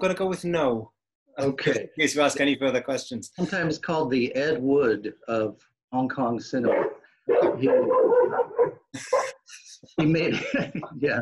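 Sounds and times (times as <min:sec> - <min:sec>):
speech: 0:00.0 - 0:11.1
laughter: 0:01.4 - 0:05.2, 0:09.0 - 0:11.1
dog barking and whining: 0:06.7 - 0:08.8.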